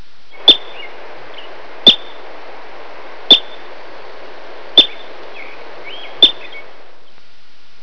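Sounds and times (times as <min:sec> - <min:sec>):
marmot calling: 0:00.4 - 0:02.2, 0:03.3 - 0:03.7, 0:04.7 - 0:06.8.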